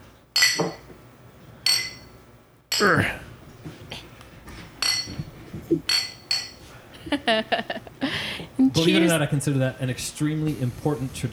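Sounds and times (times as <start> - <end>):
glasses clinking together in a toast: 0.4 - 1.0, 1.6 - 3.1, 4.8 - 6.7
speech: 2.8 - 3.2, 7.3 - 7.8, 8.8 - 11.3.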